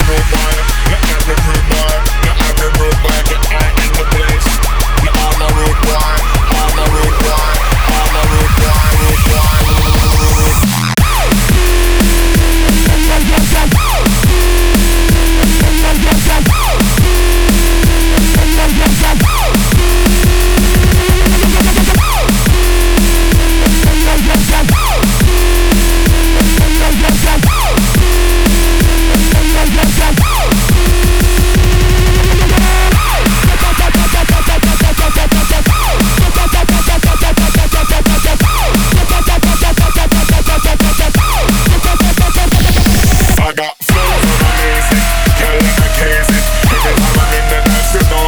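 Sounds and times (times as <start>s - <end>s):
drum and bass ting: 0.0s - 48.2s.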